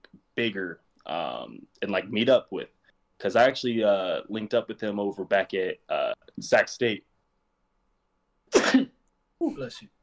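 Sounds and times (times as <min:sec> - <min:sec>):
speech: 0:00.4 - 0:07.1, 0:09.4 - 0:10.0
person sneezing: 0:08.5 - 0:09.7.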